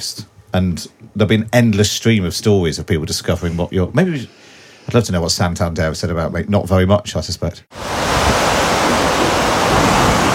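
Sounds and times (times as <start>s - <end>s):
speech: 0.0s - 8.1s
waves breaking on a beach in Cornwall: 7.7s - 10.3s.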